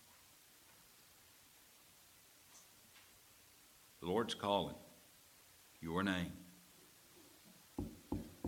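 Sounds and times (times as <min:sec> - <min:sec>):
speech: 0:04.0 - 0:04.9, 0:05.8 - 0:06.4
knocking on a wooden door: 0:07.8 - 0:08.4.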